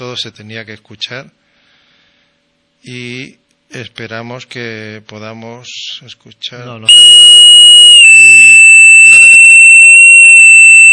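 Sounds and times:
speech: 0:00.0 - 0:01.4, 0:02.8 - 0:07.2
steady high-pitched electronic beep: 0:06.9 - 0:10.9.

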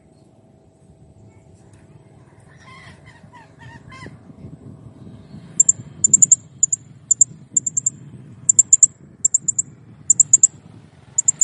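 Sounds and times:
low rumbling background noise: 0:00.0 - 0:11.4
blue-crowned hanging parrot uttering tiny high ticking notes: 0:05.6 - 0:07.9, 0:08.5 - 0:10.5, 0:11.2 - 0:11.4.

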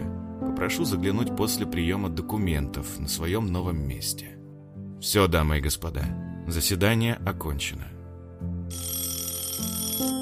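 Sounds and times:
speech: 0:00.6 - 0:04.4, 0:05.0 - 0:09.0
telephone ringing on a desk: 0:08.7 - 0:10.2.

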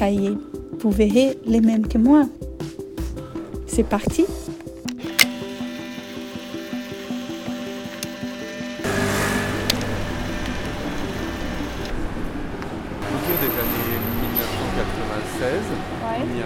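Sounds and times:
speech: 0:00.0 - 0:02.5, 0:03.8 - 0:04.6
Polaroid camera whirring and ticking while taking a photo: 0:04.9 - 0:07.0, 0:07.6 - 0:08.8, 0:09.7 - 0:12.0
traffic noise from a street with two car lanes each way in Marseille: 0:08.8 - 0:16.4.

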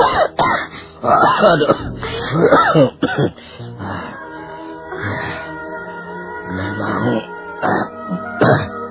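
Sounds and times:
aging father coughing up blood: 0:00.0 - 0:03.4
speech: 0:01.0 - 0:04.2, 0:06.6 - 0:08.7
aging father groaning from pain in his ribs: 0:01.7 - 0:04.1.

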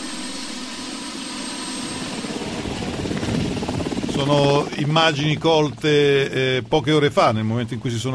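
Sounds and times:
helicopter thin high whine: 0:00.0 - 0:03.0
helicopter engine and rotor descending to land at an air base in Delaware: 0:00.0 - 0:08.1
speech: 0:04.2 - 0:08.1.

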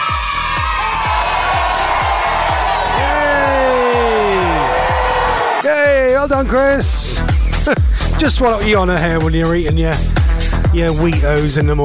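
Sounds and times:
audience cheering and applauding: 0:00.0 - 0:06.6
steady repeating thumping beat: 0:00.0 - 0:11.8
speech: 0:06.3 - 0:10.2, 0:10.8 - 0:11.8.

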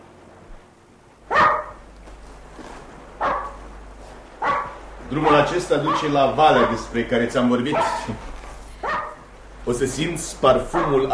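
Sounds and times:
small dog barking during a walk through an estate park: 0:01.3 - 0:01.8, 0:03.2 - 0:03.7, 0:04.4 - 0:06.9, 0:07.7 - 0:08.2, 0:08.8 - 0:09.3, 0:10.7 - 0:11.1
speech: 0:05.1 - 0:08.3, 0:09.7 - 0:11.1.

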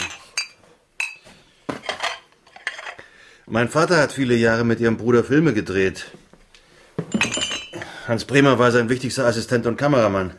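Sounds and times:
plates clinking as packed into a cardboard box: 0:00.0 - 0:03.0, 0:07.0 - 0:07.9
speech: 0:03.5 - 0:06.2, 0:08.1 - 0:10.3.

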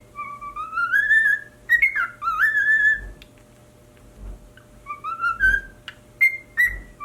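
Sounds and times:
pied cockatiel singing sliding whistles: 0:00.1 - 0:03.1, 0:04.8 - 0:07.0.

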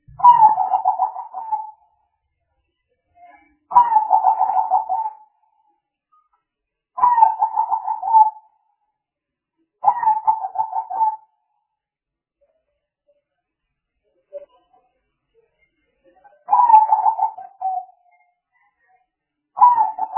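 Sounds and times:
spotted dove cooing: 0:00.2 - 0:01.8, 0:03.7 - 0:05.2, 0:07.0 - 0:08.5, 0:09.8 - 0:11.3, 0:16.5 - 0:17.9, 0:19.6 - 0:20.1.

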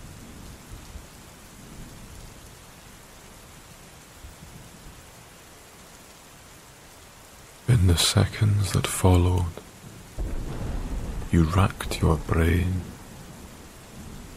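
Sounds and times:
steady rain: 0:00.0 - 0:14.3
speech: 0:07.7 - 0:09.7, 0:11.3 - 0:12.9
rumbling thunder: 0:10.2 - 0:14.3.

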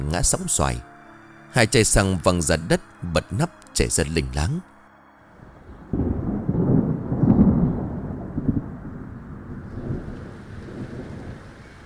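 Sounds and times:
speech: 0:00.1 - 0:00.9, 0:01.5 - 0:04.8
loud deep thunderclap: 0:05.4 - 0:11.8
rain falling: 0:05.4 - 0:11.8.

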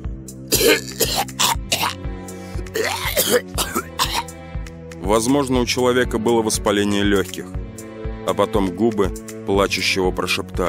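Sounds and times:
barking cough: 0:00.5 - 0:02.0, 0:02.7 - 0:04.3
speech: 0:00.6 - 0:01.0, 0:03.3 - 0:03.8, 0:05.1 - 0:07.6, 0:08.3 - 0:10.6.

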